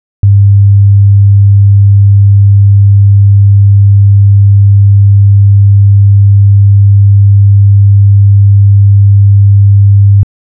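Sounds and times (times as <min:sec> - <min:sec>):
100Hz sine wave test tone: 0:00.2 - 0:10.3.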